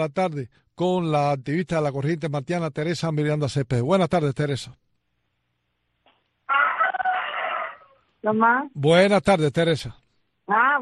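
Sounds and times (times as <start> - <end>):
speech: 0.0 - 4.8, 8.2 - 10.8
rooster crowing: 6.5 - 8.0.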